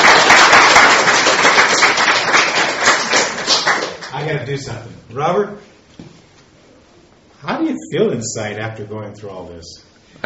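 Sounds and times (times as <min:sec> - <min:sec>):
audience applause at a church gathering: 0:00.0 - 0:04.3
speech: 0:04.5 - 0:06.1, 0:07.4 - 0:10.2.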